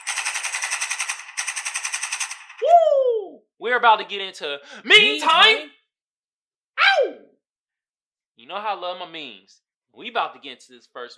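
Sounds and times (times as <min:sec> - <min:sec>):
AK-47 automatic gunfire bursts: 0:00.0 - 0:02.6
speech: 0:03.6 - 0:05.8, 0:08.4 - 0:11.1.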